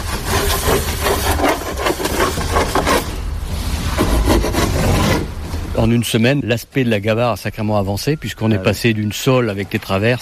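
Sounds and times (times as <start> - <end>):
hand saw cutting a wooden side planking board for a boat: 0.0 - 3.2, 3.9 - 5.3
speech: 5.8 - 10.2.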